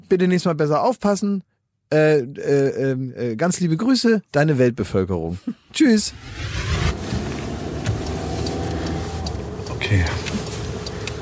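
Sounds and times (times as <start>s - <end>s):
speech: 0.0s - 7.0s, 9.9s - 10.4s
car engine and road noise while driving in traffic: 6.0s - 11.2s.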